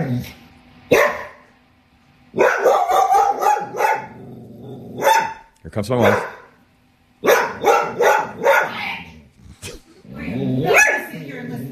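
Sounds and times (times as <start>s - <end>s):
speech: 0.1s - 1.0s, 5.7s - 6.4s
dog barking: 0.9s - 1.5s, 2.3s - 4.2s, 5.0s - 6.6s, 7.2s - 8.8s, 10.7s - 11.2s.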